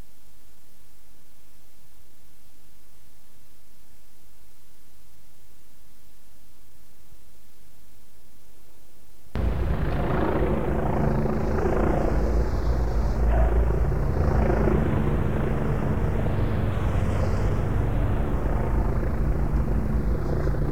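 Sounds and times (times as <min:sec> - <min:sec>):
helicopter rotor hovering overhead above a circuit: 0:09.4 - 0:20.7.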